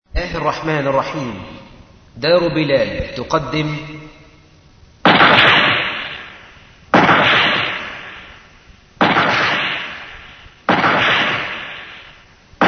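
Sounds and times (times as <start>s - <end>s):
speech: 0.2s - 1.6s, 2.2s - 4.0s
loud cannon shots: 5.0s - 12.6s.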